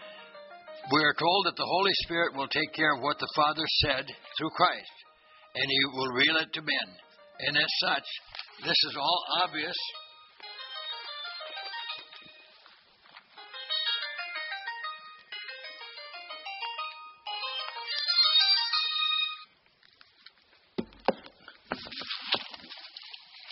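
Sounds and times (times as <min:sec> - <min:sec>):
mobile phone ringtone playing a bright electronic melody: 0:00.0 - 0:01.0, 0:09.4 - 0:19.5
speech: 0:00.9 - 0:05.0, 0:05.6 - 0:10.5
rustling and handling noises as the phone is turned off: 0:08.2 - 0:08.6, 0:10.4 - 0:13.8.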